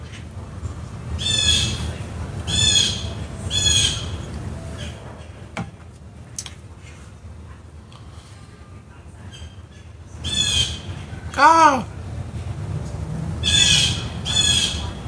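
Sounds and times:
birds squawking loudly overhead: 0.0s - 5.1s, 9.2s - 12.2s, 13.3s - 15.0s
low rumbling outdoor background: 0.0s - 15.0s.

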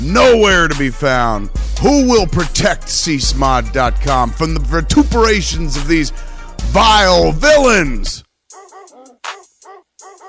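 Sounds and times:
speech: 0.1s - 8.2s
dog barking: 8.5s - 10.2s.

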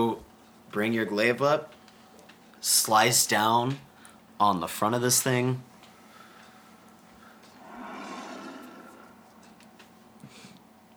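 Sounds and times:
speech: 0.0s - 1.8s, 2.6s - 5.7s
low ambient background: 0.0s - 10.9s
creature's deep rumbling roar in the Underdark: 7.6s - 9.2s.

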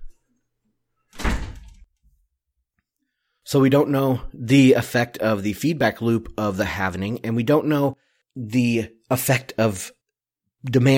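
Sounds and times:
door swinging shut with a thud and rattle: 1.1s - 1.9s
speech: 3.5s - 10.0s, 10.6s - 10.9s.

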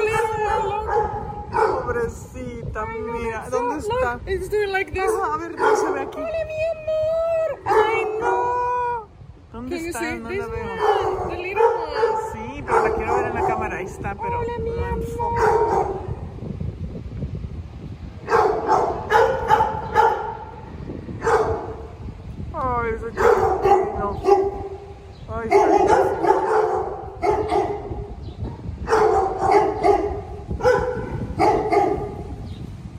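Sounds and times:
several dogs barking and yipping at an adoption shelter: 0.0s - 1.9s, 5.0s - 6.2s, 7.6s - 8.6s, 10.6s - 13.9s, 15.3s - 16.2s, 18.2s - 20.6s, 21.2s - 21.9s, 23.2s - 32.4s
speech: 2.7s - 8.4s, 9.5s - 16.1s.

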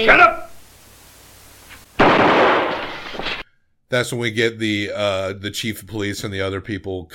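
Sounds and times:
speech: 0.0s - 0.4s, 3.9s - 7.1s
gunshot fired through a window in a film scene: 2.0s - 3.4s.

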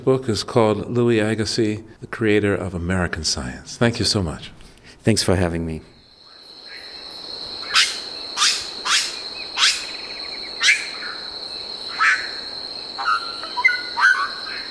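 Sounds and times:
speech: 0.0s - 5.9s
steady high insect drone in a rainforest at dawn: 6.0s - 14.6s
sharp sweeping calls in a rainforest at dawn: 6.6s - 14.6s
bird chirps in a rainforest at dawn: 7.6s - 11.3s, 13.0s - 14.6s.

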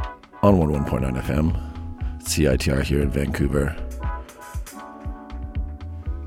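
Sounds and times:
mellow music with warm sustained chords: 0.0s - 6.2s
speech: 0.4s - 3.9s
soft steady thumping bass beat: 1.6s - 6.2s.

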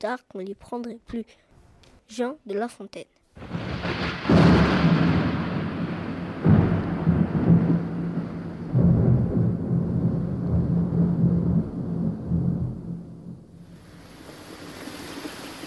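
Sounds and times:
speech: 0.0s - 1.5s, 2.1s - 3.6s
deep rumbling thunder rolls: 3.4s - 14.1s
steady rain: 3.4s - 15.6s.

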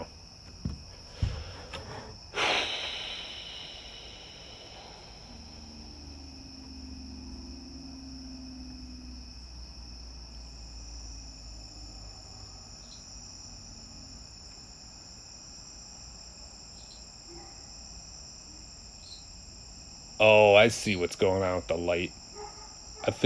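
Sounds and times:
rustling: 0.0s - 2.3s
cricket chirping: 0.0s - 23.2s
breathy snorts: 1.1s - 6.0s
speech: 20.2s - 22.2s, 23.1s - 23.2s.

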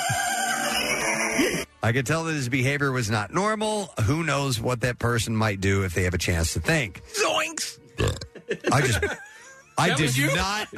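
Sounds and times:
speech: 0.1s - 0.3s, 1.4s - 10.7s
loud belch with a croaky wobbling pitch: 8.0s - 8.4s
short throaty grunts: 8.0s - 8.4s
laughter: 8.2s - 10.7s.

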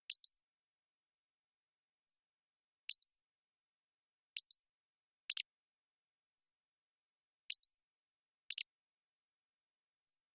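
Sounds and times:
Pacific-slope flycatcher Empidonax difficilis song: 0.0s - 0.5s, 1.9s - 3.4s, 4.3s - 5.6s, 6.3s - 6.7s, 7.4s - 8.8s.

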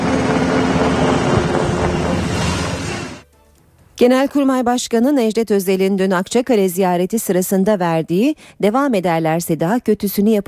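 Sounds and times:
helicopters departing with engine and rotor wash roar: 0.0s - 3.2s
speech: 4.0s - 10.4s.

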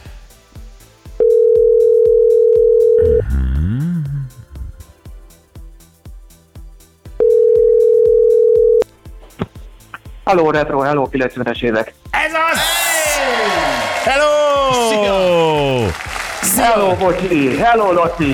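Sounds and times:
thumping rhythmic music bed: 0.0s - 18.3s
ringback tones of an outgoing phone call: 1.2s - 3.2s, 7.2s - 8.8s
speech: 10.3s - 12.0s, 16.6s - 18.3s.

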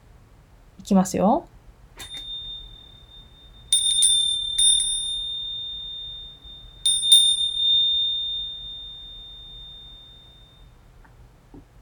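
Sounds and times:
speech: 0.9s - 1.6s
Japanese wind chime fuurin tinkling: 2.0s - 10.7s.

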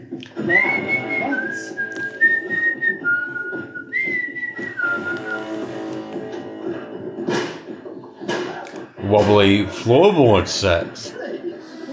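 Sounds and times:
whistled tune of sustained sliding notes: 0.3s - 5.9s
speech: 0.5s - 1.0s, 9.1s - 11.2s.

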